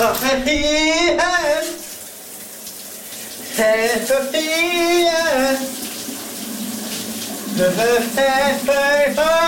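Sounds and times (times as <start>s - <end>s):
man singing loudly in the shower: 0.0s - 1.9s, 3.5s - 5.8s, 7.6s - 9.4s
shower spraying water: 0.0s - 9.4s.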